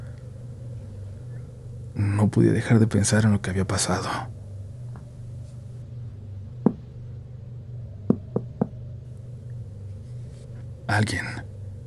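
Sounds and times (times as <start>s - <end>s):
low steady hum: 0.0s - 11.8s
speech: 2.0s - 4.4s, 10.9s - 11.5s
knocking on a bathroom door: 6.6s - 6.8s, 8.1s - 8.8s.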